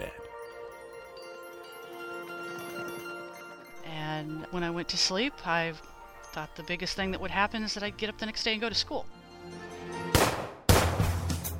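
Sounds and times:
speech: 4.5 - 9.6
gunshots with long rumbling echo: 10.1 - 11.5.

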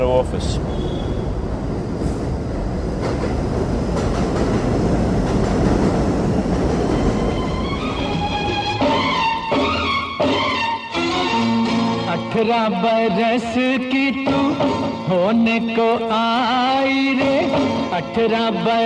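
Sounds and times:
speech: 0.0 - 1.0, 3.2 - 4.2, 12.4 - 18.8
number 7 subway train rumbling and clattering on elevated tracks: 0.0 - 18.8.

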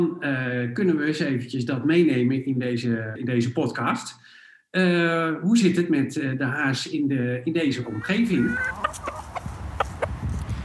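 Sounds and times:
speech: 0.0 - 9.1
chicken clucking: 7.8 - 10.4
wind buffeting the microphone outdoors: 8.7 - 10.6.

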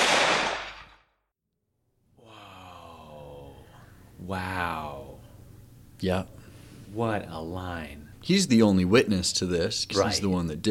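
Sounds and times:
rifle gunshot: 0.0 - 1.0
speech: 4.3 - 4.9, 6.0 - 10.6.

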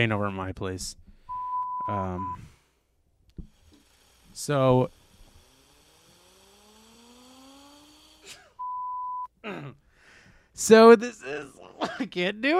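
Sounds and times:
speech: 0.0 - 1.0, 1.9 - 2.5, 4.4 - 5.0, 9.4 - 9.8, 10.6 - 12.5
electronic beeps: 1.3 - 2.4, 8.6 - 9.3
person blowing their nose: 3.5 - 8.6.

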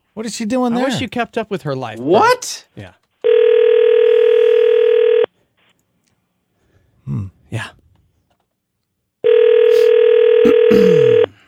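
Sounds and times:
speech: 0.2 - 3.0, 7.1 - 7.8
telephone call ringing tone: 3.2 - 5.3, 9.2 - 11.3.

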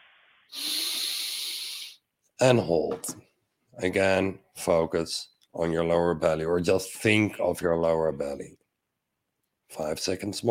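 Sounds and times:
deep breath in during a guided breathing exercise: 0.0 - 2.0
speech: 2.4 - 8.6, 9.7 - 10.4.

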